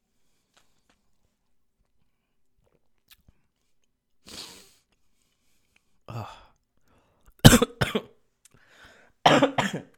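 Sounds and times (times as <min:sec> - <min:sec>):
faint breathing: 0:04.3 - 0:07.3, 0:08.5 - 0:09.2
person coughing: 0:07.4 - 0:08.2, 0:09.2 - 0:09.9.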